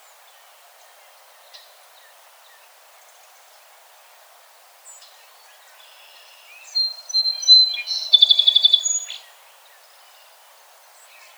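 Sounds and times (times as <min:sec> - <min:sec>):
faint background noise: 0:00.0 - 0:11.3
song sparrow singing: 0:05.0 - 0:10.3.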